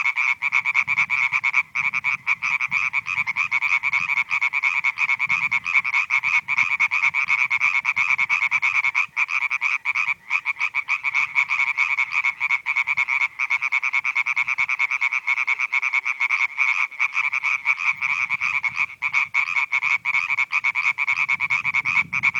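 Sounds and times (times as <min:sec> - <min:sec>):
European tree frogs calling in a loud chorus: 0:00.0 - 0:22.3.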